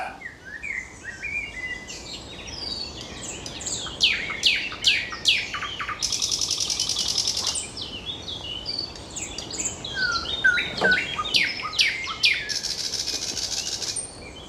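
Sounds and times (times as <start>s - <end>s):
faint outdoor ambience: 0.0s - 14.4s
nightingale singing: 0.0s - 14.4s
insect-like hiss: 6.0s - 7.8s, 8.8s - 14.2s.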